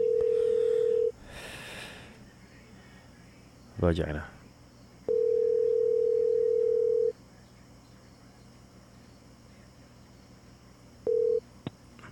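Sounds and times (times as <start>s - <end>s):
phone ringback tone on an outgoing call: 0.0s - 1.2s, 5.1s - 7.1s, 11.0s - 11.4s
speech: 3.8s - 4.4s.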